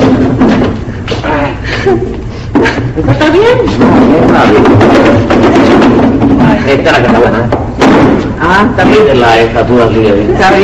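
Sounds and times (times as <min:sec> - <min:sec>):
laughter: 0:01.1 - 0:04.1
speech: 0:03.0 - 0:05.0, 0:06.8 - 0:07.5, 0:08.6 - 0:10.6
chair being swapped and set down with heavy thumps and knocks: 0:03.8 - 0:09.0.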